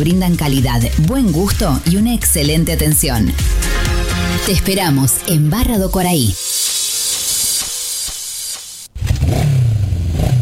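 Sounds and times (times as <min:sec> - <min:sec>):
speech: 0:00.0 - 0:06.4
loud rush of steady hiss: 0:06.4 - 0:08.9
motorcycle engine revving: 0:08.9 - 0:10.3.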